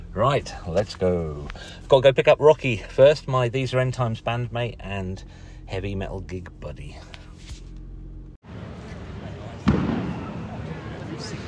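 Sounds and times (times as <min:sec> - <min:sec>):
outdoor noise: 0:00.0 - 0:11.4
speech: 0:00.2 - 0:07.2
firework boom outside: 0:09.6 - 0:10.6.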